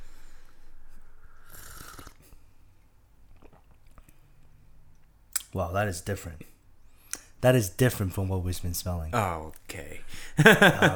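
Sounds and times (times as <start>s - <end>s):
slurping sip of a chocolate drink: 1.2s - 2.4s
wet mouth and swallowing sounds: 3.3s - 4.2s
speech: 5.5s - 6.6s, 7.4s - 10.9s
laughter: 10.4s - 10.9s.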